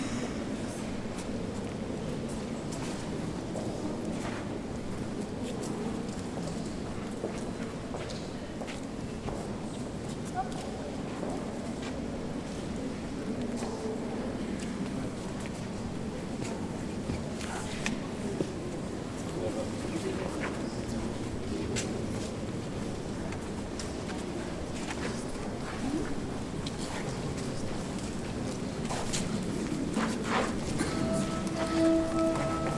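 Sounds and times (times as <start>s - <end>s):
murmuring crowd inside a large cathedral: 0.0s - 32.7s
footsteps echoing through a cathedral: 28.8s - 32.7s.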